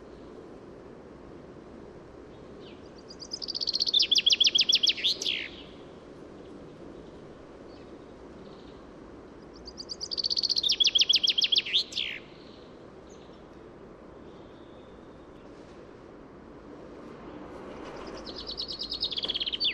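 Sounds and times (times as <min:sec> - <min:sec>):
Common chaffinch Fringilla coelebs singing: 0:02.6 - 0:05.9, 0:09.4 - 0:13.4, 0:17.9 - 0:19.7.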